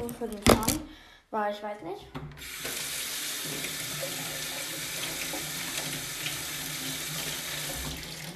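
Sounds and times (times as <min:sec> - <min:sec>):
speech: 0:00.2 - 0:02.8, 0:03.4 - 0:04.2
lemons washed under a running kitchen tap: 0:02.1 - 0:08.3.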